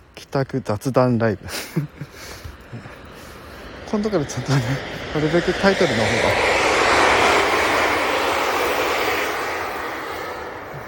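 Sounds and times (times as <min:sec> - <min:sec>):
speech: 0:00.3 - 0:02.9, 0:03.9 - 0:06.6
train roaring past: 0:00.8 - 0:10.8.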